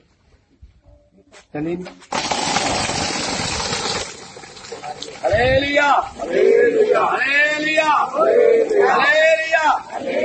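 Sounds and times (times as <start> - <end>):
speech: 1.5 - 3.1, 5.0 - 10.2
borewell pump motor running with a steady hum: 2.1 - 5.4
water from a borewell gushing and splashing: 2.1 - 6.3.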